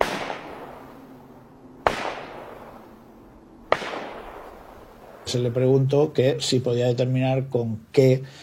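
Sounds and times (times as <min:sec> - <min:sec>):
gunshots with long decay: 0:00.0 - 0:01.2, 0:01.8 - 0:03.0, 0:03.7 - 0:05.9
speech: 0:05.3 - 0:08.4.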